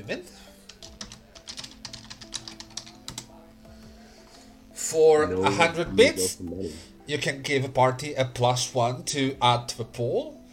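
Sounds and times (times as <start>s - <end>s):
speech: 0.0s - 0.5s, 4.9s - 10.4s
rapid typing on a computer keyboard writing a chat message: 0.7s - 3.3s.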